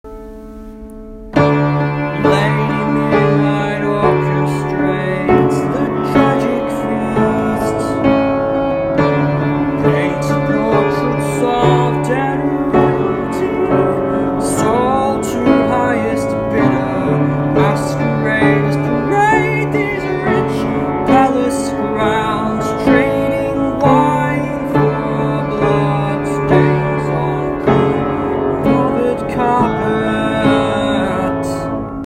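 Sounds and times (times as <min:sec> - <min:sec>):
piano chorus: 0:00.1 - 0:32.0.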